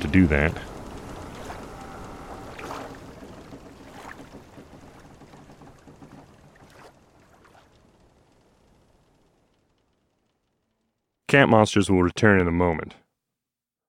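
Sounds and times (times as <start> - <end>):
small waves lapping against the hull of a boat: 0.0 - 8.6
speech: 0.1 - 0.7, 11.3 - 13.0.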